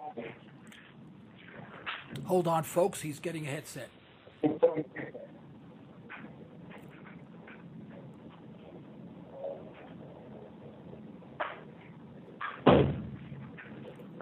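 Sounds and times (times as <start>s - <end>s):
low steady hum: 0.0s - 14.2s
speech: 2.2s - 4.0s
heavy door slamming shut: 12.7s - 13.2s.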